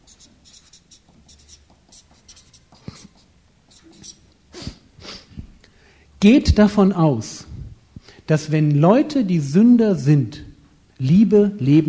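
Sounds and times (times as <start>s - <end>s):
writing on a board: 0.0s - 4.2s
speech: 6.2s - 7.5s, 8.3s - 10.4s, 11.0s - 11.8s.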